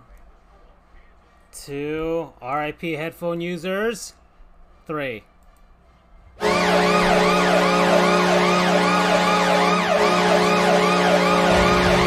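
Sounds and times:
speech: 1.6 - 4.2, 4.9 - 5.3
hockey goal horn blasting a steady low drone: 6.4 - 12.0
several wailing sirens: 6.4 - 12.0.

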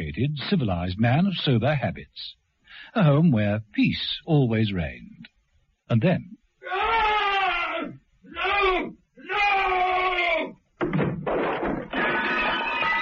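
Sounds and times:
speech: 0.1 - 5.3, 5.9 - 7.1
loud drawn-out screams: 6.6 - 10.6, 12.0 - 12.9
crash: 10.8 - 12.9
noisy clattering: 10.8 - 12.9.

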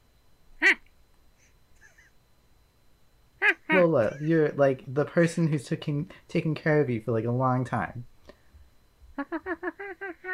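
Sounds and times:
lemur squeaky call: 1.8 - 2.1
speech: 3.9 - 8.1, 9.2 - 10.3.

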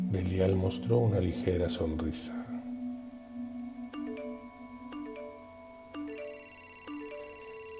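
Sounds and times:
speech: 0.1 - 2.4
mobile phone ringing with bright electronic chime tones: 3.9 - 7.7.

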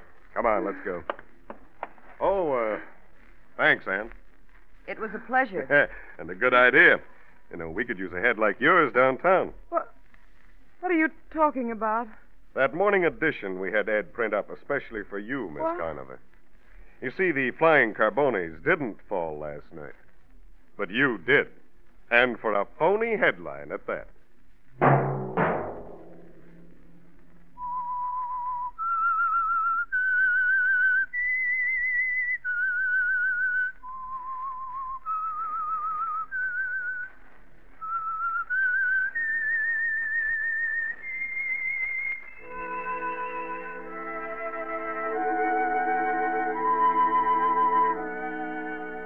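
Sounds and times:
speech: 0.4 - 1.2, 2.2 - 2.9, 3.6 - 4.2, 4.9 - 10.0, 10.8 - 16.3, 17.0 - 20.0, 20.8 - 24.1
lone whistler whistling a slow eerie melody: 27.6 - 37.1, 37.8 - 49.0
orchestra playing a radio program theme: 42.4 - 49.0.

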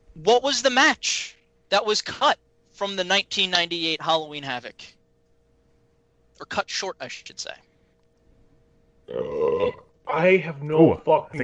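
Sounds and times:
speech: 0.2 - 5.0, 6.4 - 7.7, 9.1 - 11.4
person burping: 9.1 - 10.0.

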